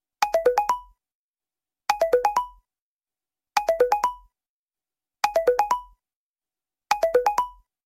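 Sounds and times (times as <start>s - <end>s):
iPhone ringtone: 1.9s - 2.6s, 3.6s - 4.3s, 5.2s - 6.0s, 6.9s - 7.7s.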